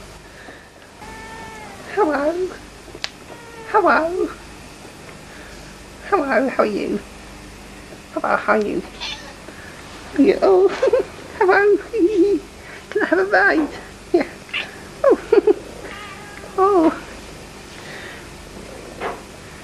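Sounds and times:
female cat meowing: 1.0 - 2.6, 3.3 - 4.3, 9.0 - 9.4, 15.8 - 16.8
speech: 2.0 - 2.7, 3.7 - 4.4, 6.1 - 7.1, 8.2 - 9.1, 10.2 - 12.4, 13.0 - 14.2.

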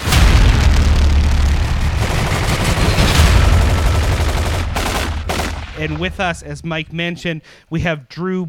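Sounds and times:
firing squad gunfire volley: 0.0 - 6.7
speech: 5.8 - 8.4.

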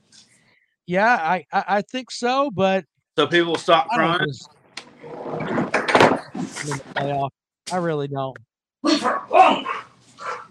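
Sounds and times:
speech: 0.9 - 5.6, 6.5 - 9.8
dog barking: 8.9 - 10.5.

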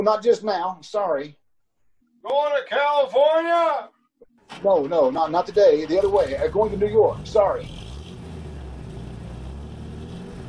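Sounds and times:
speech: 0.0 - 1.4, 2.2 - 7.9
car engine revving as the car is driven back onto the road: 5.4 - 10.4.

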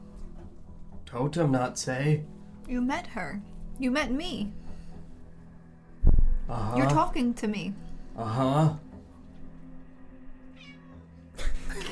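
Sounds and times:
speech: 1.1 - 4.6, 6.5 - 8.8
female cat meowing: 10.5 - 11.1.

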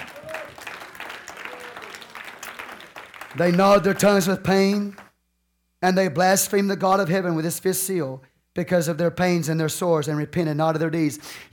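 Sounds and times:
church congregation clapping in praise during a sermon: 0.0 - 5.2
speech: 3.3 - 5.0, 5.8 - 11.5.

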